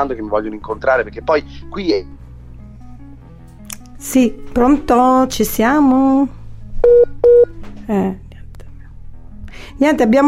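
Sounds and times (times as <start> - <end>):
speech: 0.0 - 2.2, 4.0 - 7.1, 7.9 - 8.2, 9.8 - 10.2
telephone busy tone after a call drops: 6.8 - 7.5.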